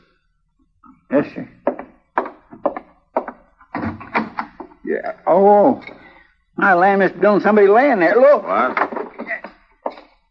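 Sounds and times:
speech: 1.1 - 1.6, 5.0 - 6.0, 6.6 - 8.8
thumping and rattling as someone works at a door from outside: 1.6 - 4.8, 8.6 - 10.0.

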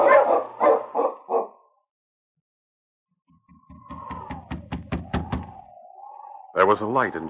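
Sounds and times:
husky sled dogs barking: 0.0 - 1.8
speech: 6.6 - 7.2.

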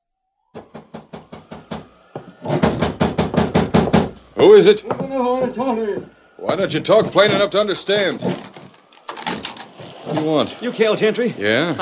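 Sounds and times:
knocking on a door during a rainstorm: 0.6 - 4.2
speech: 4.4 - 8.4, 10.2 - 11.8.

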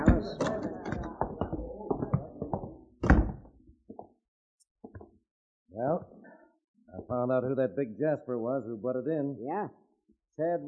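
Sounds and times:
rapid series of wooden knocks and thumps: 0.0 - 4.1, 4.8 - 5.1
speech: 7.1 - 9.8, 10.4 - 10.6.

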